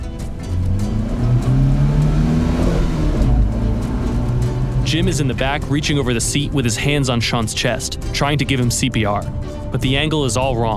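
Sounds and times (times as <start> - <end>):
car engine revving and accelerating: 0.0 - 6.8
speech: 4.9 - 10.7.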